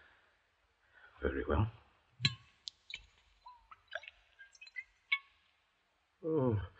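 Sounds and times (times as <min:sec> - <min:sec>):
speech: 0:01.2 - 0:02.4
drinking water trickling into a tiny thimble-sized cup: 0:02.2 - 0:05.3.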